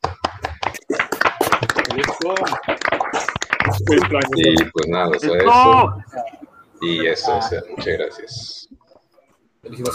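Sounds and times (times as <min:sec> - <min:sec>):
hand-clapping applause from a few people: 0:00.0 - 0:05.6
speech: 0:02.0 - 0:02.7, 0:03.8 - 0:08.6, 0:09.7 - 0:09.9
voices calling out and talking: 0:03.6 - 0:09.9.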